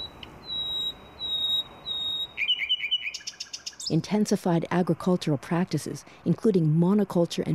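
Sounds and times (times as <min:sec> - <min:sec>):
nightingale singing: 0:00.0 - 0:04.1
speech: 0:03.9 - 0:07.5.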